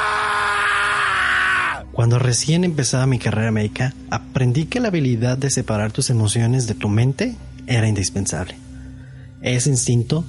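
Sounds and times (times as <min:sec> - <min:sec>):
man screaming in agony: 0:00.0 - 0:01.9
speech: 0:02.0 - 0:08.7, 0:09.4 - 0:10.2.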